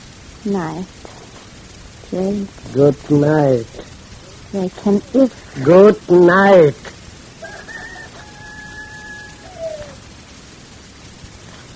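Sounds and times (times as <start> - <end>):
steady hiss: 0.0 - 11.7
speech: 0.4 - 1.1, 2.1 - 3.9, 4.5 - 6.9
rooster crowing at dawn: 7.4 - 10.2.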